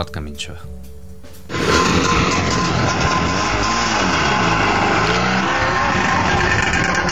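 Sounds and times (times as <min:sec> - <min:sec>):
speech: 0:00.0 - 0:01.0
Trabant car engine revving at a national Trabant gathering near Loznitsa: 0:01.5 - 0:07.0.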